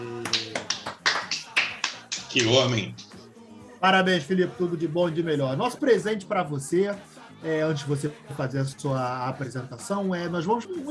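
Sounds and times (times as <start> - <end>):
rhythmic clapping: 0.0 - 3.3
speech: 2.3 - 3.1, 3.8 - 10.8.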